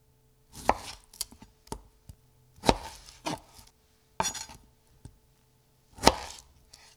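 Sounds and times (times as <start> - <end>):
chopping lime for cooking: 0.6 - 1.9, 2.6 - 3.6, 4.2 - 4.6, 6.0 - 6.9.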